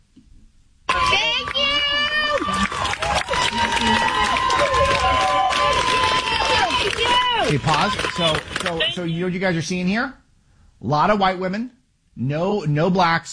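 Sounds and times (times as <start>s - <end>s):
crowd of women shouting and chattering in high-pitched voices: 0.9s - 9.0s
crowd of women applauding: 0.9s - 9.1s
speech: 7.5s - 10.2s, 10.8s - 13.3s.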